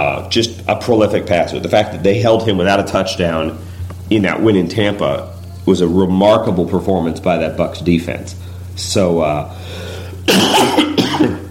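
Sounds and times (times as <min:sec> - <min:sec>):
speech: 0:00.0 - 0:11.4
person coughing: 0:10.2 - 0:11.4.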